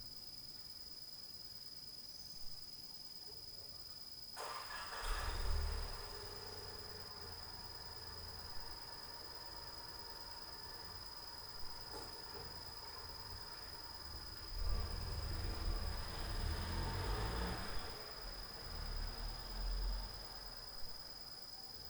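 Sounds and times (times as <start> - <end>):
motorcycle starting at night: 4.4 - 20.5.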